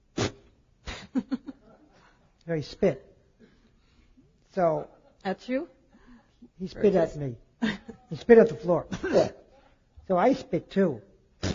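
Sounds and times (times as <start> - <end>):
speech: 2.5 - 3.1, 4.6 - 5.8, 6.6 - 9.4, 10.1 - 11.1
voice imitating a child's asthmatic cough: 8.9 - 9.5.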